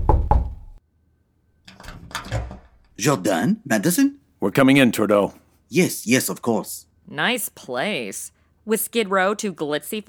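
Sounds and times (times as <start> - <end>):
two sharp knocks on a door: 0.0 - 0.8
speech: 3.0 - 10.0.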